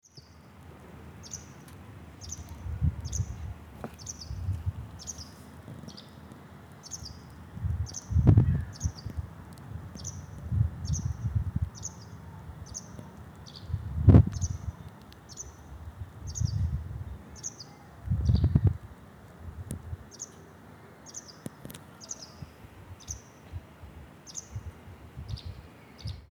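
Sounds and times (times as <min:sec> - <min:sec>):
bird singing in floodplain territory: 0:01.2 - 0:06.2, 0:06.8 - 0:09.2, 0:10.0 - 0:15.7, 0:16.3 - 0:18.7, 0:20.1 - 0:23.4.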